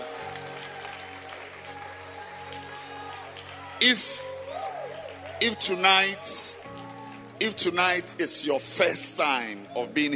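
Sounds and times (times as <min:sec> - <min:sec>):
audience clapping hands during a worship service: 0:00.0 - 0:10.1
speech: 0:03.8 - 0:04.3, 0:05.4 - 0:06.8, 0:07.4 - 0:10.1.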